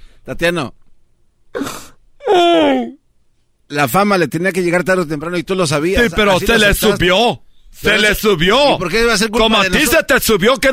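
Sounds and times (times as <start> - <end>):
speech: 0.2 - 0.8, 3.7 - 10.7
person crying and whimpering: 1.6 - 3.0.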